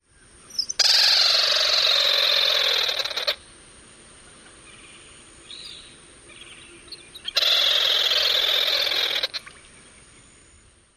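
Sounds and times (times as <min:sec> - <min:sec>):
bird chatter calls: 0:00.4 - 0:03.5, 0:04.5 - 0:10.2.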